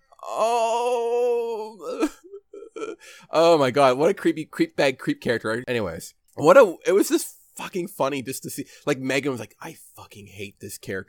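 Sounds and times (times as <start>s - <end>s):
human voice imitating a groan: 0.0s - 3.1s
speech: 0.4s - 1.0s, 3.3s - 11.0s.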